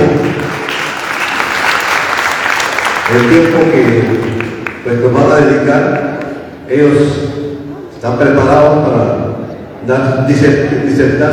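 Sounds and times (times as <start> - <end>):
audience applause for panelists at a panel discussion: 0.0 - 5.3
speech: 3.1 - 4.3, 4.9 - 6.1, 6.7 - 7.4, 8.0 - 9.2, 9.8 - 11.3.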